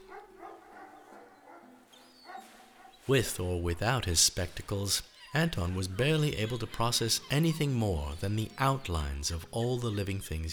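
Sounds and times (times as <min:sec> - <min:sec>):
dog barking furiously with sharp throaty barks: 0:00.0 - 0:03.1
speech: 0:03.1 - 0:10.5.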